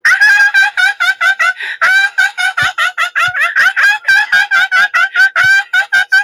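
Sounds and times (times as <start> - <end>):
ear-splitting laughter: 0.1 - 6.2.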